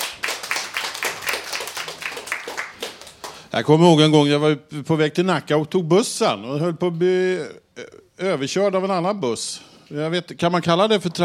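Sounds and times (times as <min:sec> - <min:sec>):
studio audience of visitors applauding: 0:00.0 - 0:03.5
speech: 0:03.5 - 0:11.2.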